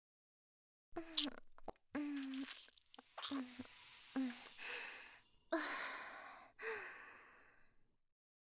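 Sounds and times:
person drinking fizzy juice mouth-to-mouth without a straw: 1.0 - 5.6
faint hiss of fizzy juice: 2.1 - 7.4
person sighing softly: 3.3 - 7.4
person gasping: 3.7 - 7.6.

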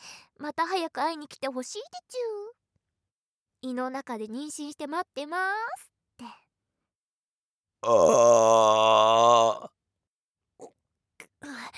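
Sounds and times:
speech: 0.4 - 2.6, 3.6 - 6.4, 7.8 - 9.8
long loud voiced burp: 7.8 - 9.7.

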